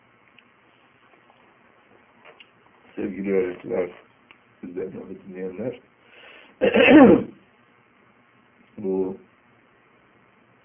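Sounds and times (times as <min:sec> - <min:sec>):
speech: 0:03.0 - 0:05.9
harsh throat clearing from a speaker addressing teachers: 0:06.6 - 0:07.4.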